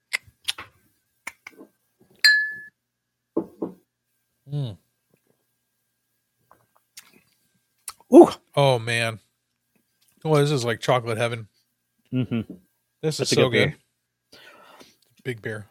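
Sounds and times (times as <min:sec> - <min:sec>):
beer glasses clinking together in a toast: 0:02.2 - 0:02.7
speech: 0:04.5 - 0:04.8, 0:08.1 - 0:09.2, 0:10.2 - 0:11.5, 0:12.1 - 0:13.8, 0:15.2 - 0:15.6.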